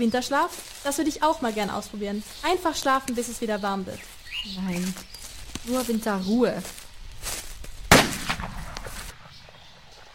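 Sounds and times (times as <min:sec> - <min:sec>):
speech: 0:00.0 - 0:06.8
hunting rifle shot with short rolling echo outdoors: 0:07.9 - 0:09.8.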